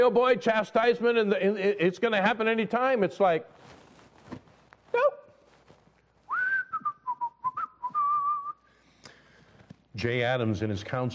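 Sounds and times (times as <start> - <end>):
speech: 0.0 - 3.8, 10.0 - 11.1
faint noise: 0.0 - 11.1
person whistling a melody: 6.3 - 8.7.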